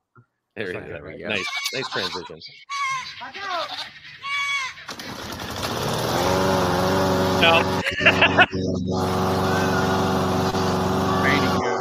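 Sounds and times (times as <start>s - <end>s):
speech: 0.6s - 4.1s, 7.4s - 10.1s
goats bleating in a played video: 1.3s - 4.9s, 7.8s - 8.4s
laughter: 1.4s - 2.4s, 7.4s - 10.1s
loud steady engine drone: 5.4s - 11.8s.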